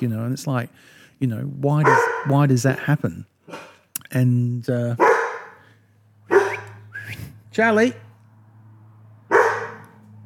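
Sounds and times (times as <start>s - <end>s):
speech: 0.0s - 5.2s, 7.6s - 8.0s
dog barking: 1.8s - 2.4s, 5.0s - 5.7s, 6.3s - 6.9s, 9.3s - 10.0s.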